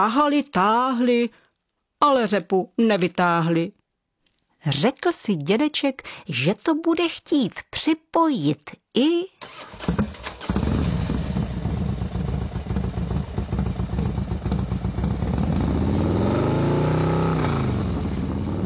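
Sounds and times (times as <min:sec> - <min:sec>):
speech: 0:00.0 - 0:01.4, 0:02.0 - 0:03.8, 0:04.6 - 0:10.0
motorcycle engine revving: 0:09.4 - 0:18.6.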